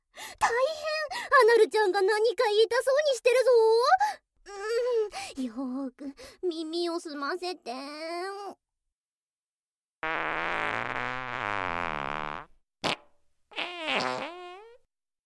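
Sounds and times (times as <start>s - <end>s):
speech: 1.6s - 8.6s, 10.0s - 11.6s
farts: 10.0s - 14.9s.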